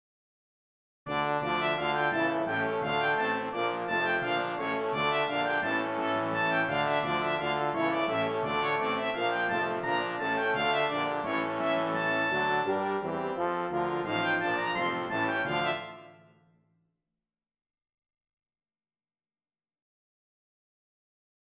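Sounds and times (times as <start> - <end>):
traditional brass music in D minor with piccolo: 1.1 - 16.6.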